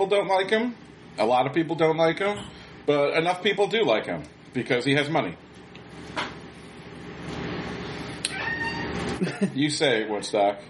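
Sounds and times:
speech: 0.0s - 5.4s, 9.2s - 10.6s
steady hum: 0.0s - 10.6s
cat meowing with a drawn-out wavering cry: 8.3s - 9.0s.

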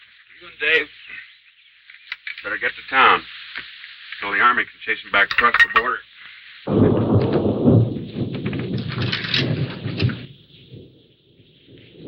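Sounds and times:
speech: 0.4s - 1.3s, 2.4s - 3.4s, 4.4s - 6.8s
heavy rumble of thunder from an approaching storm: 6.7s - 12.0s.

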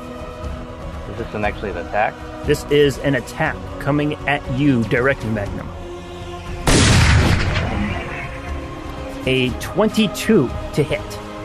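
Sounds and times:
speech: 1.1s - 5.8s, 9.2s - 11.2s
sharp gunshot sound effect: 6.6s - 8.0s.

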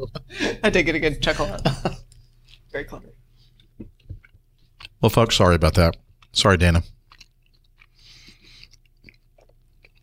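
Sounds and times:
speech: 0.6s - 1.9s, 5.0s - 7.0s
wet chewing of pizza with crunchy bites and smacking: 3.4s - 10.0s.

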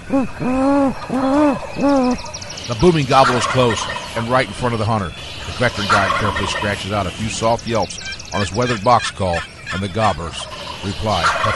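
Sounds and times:
man imitating great horned owl hoots during a turkey hunt: 0.0s - 2.4s
speech: 0.1s - 11.5s.

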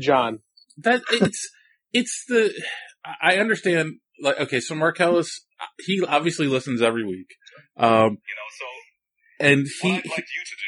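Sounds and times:
speech: 0.0s - 8.8s, 9.4s - 10.6s
tinny voices from a video playing on a phone: 0.0s - 10.6s.

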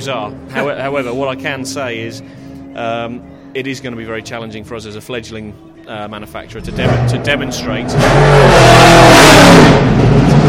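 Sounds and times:
speech: 0.0s - 10.3s
Aston Martin race car engine revving past: 6.6s - 10.4s.

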